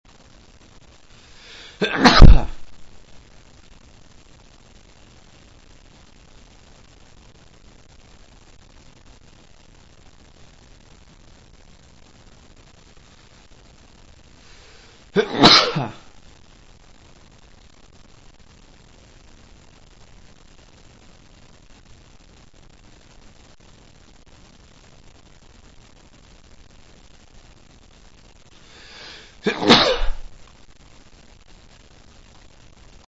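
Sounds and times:
man sneezing: 0:01.5 - 0:02.7, 0:15.2 - 0:16.0, 0:29.4 - 0:30.2.

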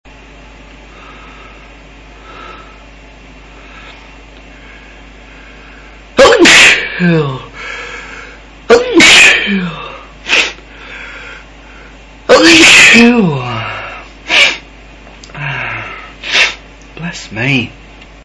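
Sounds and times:
man sneezing: 0:06.2 - 0:07.6, 0:08.7 - 0:10.6, 0:12.3 - 0:14.7, 0:15.3 - 0:16.6.

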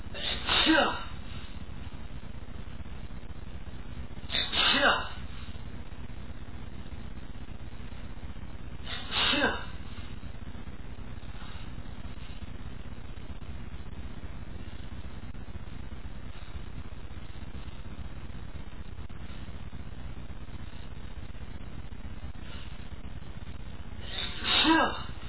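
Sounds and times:
man sneezing from pepper: 0:00.1 - 0:01.1, 0:04.3 - 0:05.2, 0:08.9 - 0:09.7, 0:24.1 - 0:25.1.

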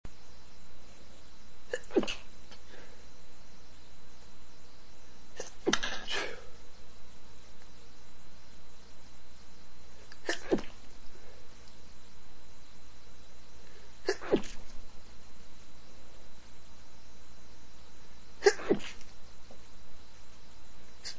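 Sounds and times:
man stifling sneezes: 0:01.7 - 0:02.3, 0:10.2 - 0:10.8, 0:14.0 - 0:14.6, 0:18.4 - 0:19.0.

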